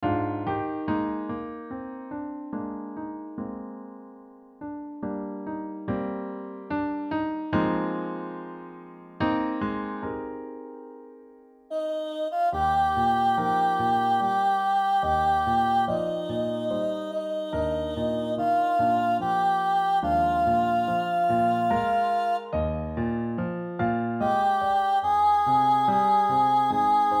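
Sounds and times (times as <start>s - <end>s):
piano accompaniment: 0.0s - 27.1s
soprano singing: 11.7s - 22.8s, 24.2s - 27.1s.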